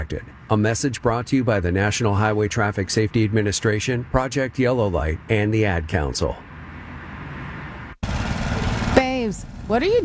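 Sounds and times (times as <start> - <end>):
speech: 0.0 - 6.5, 9.3 - 10.0
lawn mower engine running: 6.4 - 10.0.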